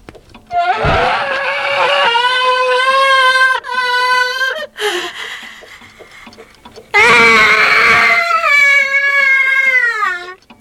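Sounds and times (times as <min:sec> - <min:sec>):
grandfather clock letting out a shrill scream: 0:00.5 - 0:04.8, 0:07.0 - 0:10.4.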